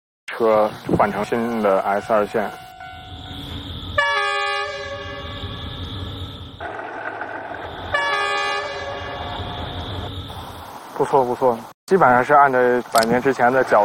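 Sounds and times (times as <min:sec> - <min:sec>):
speech: 0:00.3 - 0:02.6, 0:11.0 - 0:13.8
Beijing S2 line suburban train rumbling over bridge of old Beijing–Zhangjiakou railway: 0:00.7 - 0:10.9
long loud train horn blasts: 0:01.2 - 0:06.0, 0:07.6 - 0:10.0.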